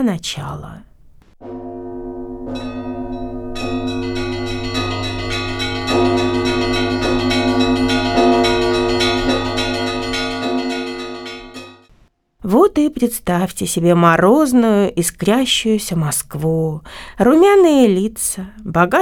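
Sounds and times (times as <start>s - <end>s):
speech: 0.0s - 1.7s, 12.5s - 19.0s
church bells ringing in a continuous peal: 1.4s - 11.9s.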